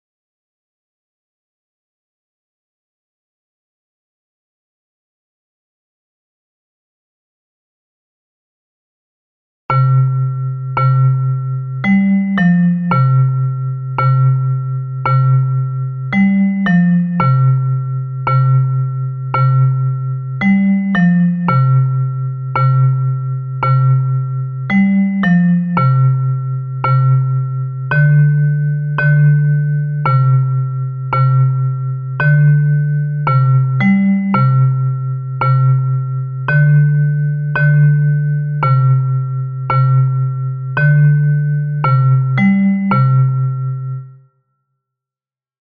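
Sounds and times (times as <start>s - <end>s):
bass metallophone playing a muineira: 9.7s - 44.2s.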